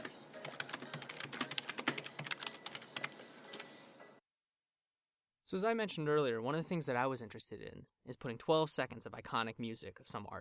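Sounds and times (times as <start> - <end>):
typing on a computer keyboard: 0.0 - 3.7
speech: 5.5 - 10.3.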